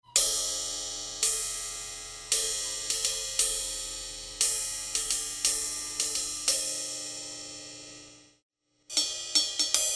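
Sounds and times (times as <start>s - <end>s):
Sabian B8 20 ride cymbal: 0.2s - 9.9s.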